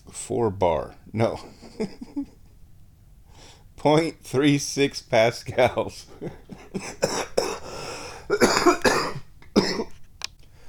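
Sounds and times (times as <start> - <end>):
speech: 0.3 - 2.4, 3.8 - 7.3
person coughing with short hacking coughs: 6.2 - 10.0
person clearing throat: 6.7 - 7.6, 8.3 - 10.0.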